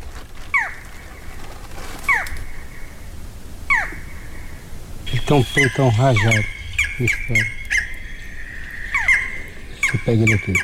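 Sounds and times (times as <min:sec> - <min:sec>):
low steady rumble: 0:00.0 - 0:10.6
barred forest falcon calling on a trail: 0:02.1 - 0:10.6
speech: 0:05.3 - 0:07.6, 0:10.0 - 0:10.6.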